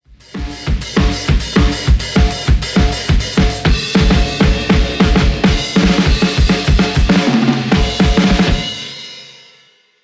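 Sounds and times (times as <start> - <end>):
drum: 0.0 - 9.2.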